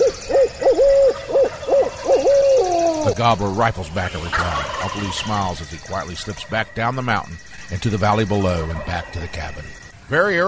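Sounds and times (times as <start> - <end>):
man hooting the barred owl call through cupped hands: 0.0 - 3.2
speech: 3.2 - 10.4.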